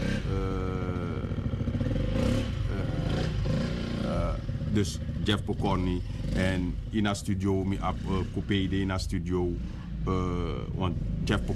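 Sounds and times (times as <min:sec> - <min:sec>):
motor engine running and revving: 0:00.0 - 0:11.5
speech: 0:04.8 - 0:11.5.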